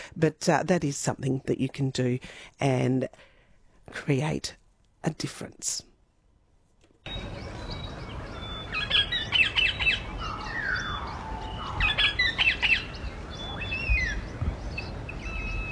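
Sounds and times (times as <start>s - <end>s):
speech: 0.2s - 3.3s, 3.9s - 5.9s
bird squawks and chirps: 8.3s - 14.2s.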